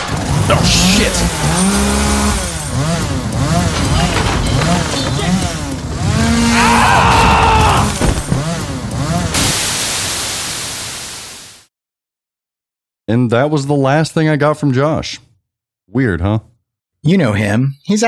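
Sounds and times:
chainsaw revving: 0.0 - 9.4
speech: 0.9 - 2.0, 13.1 - 15.3, 15.9 - 18.0
people shouting: 6.1 - 8.2
static hiss: 9.4 - 11.6.

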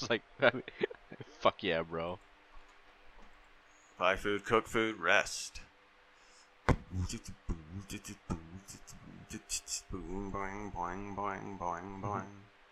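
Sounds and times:
speech: 0.0 - 2.3, 4.0 - 5.7, 6.7 - 12.4
man humming a wavering sustained melody to himself: 6.7 - 12.4
man making short vocal noises: 6.7 - 12.4.

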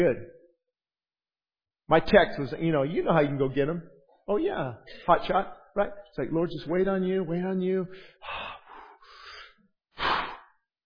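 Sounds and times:
speech: 0.0 - 0.4, 1.9 - 8.6
deep breathing: 7.9 - 10.7.

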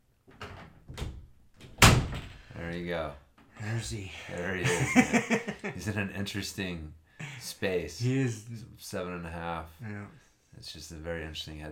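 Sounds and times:
door closing: 0.3 - 2.5
speech: 2.7 - 11.7
laughter: 4.6 - 5.8.

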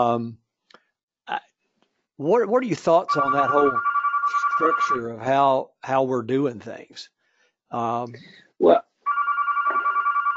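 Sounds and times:
speech: 0.0 - 0.4, 2.2 - 3.9, 4.6 - 8.8
telephone ringing with rapidly trilling electronic tone: 3.1 - 5.0, 9.1 - 10.3.

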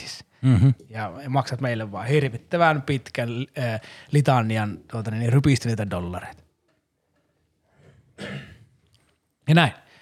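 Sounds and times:
speech: 0.4 - 6.4, 8.2 - 8.5, 9.5 - 9.8
harsh throat-clearing cough: 8.2 - 8.7.

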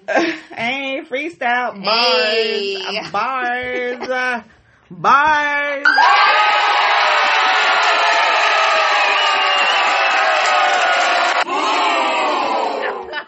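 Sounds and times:
speech: 1.0 - 6.5
crowd booing: 5.8 - 13.2.

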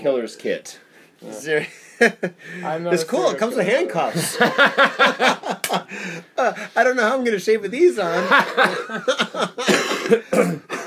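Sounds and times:
speech: 0.0 - 10.8
laughter: 4.0 - 6.6, 8.0 - 10.2
person coughing harshly: 9.6 - 10.8.

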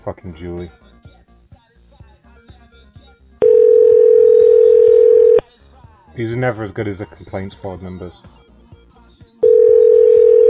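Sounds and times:
speech: 0.0 - 0.9, 6.2 - 8.4
telephone busy-signal tone: 3.4 - 5.4, 9.4 - 10.4.

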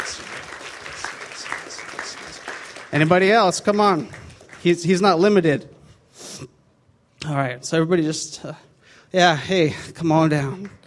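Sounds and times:
audience applauding: 0.0 - 5.0
speech: 2.9 - 5.8, 7.3 - 10.8.

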